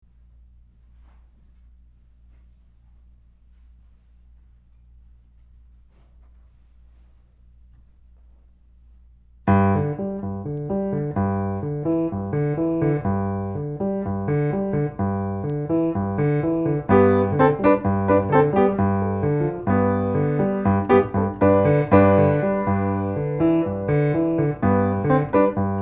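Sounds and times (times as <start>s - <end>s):
piano: 9.5s - 25.8s.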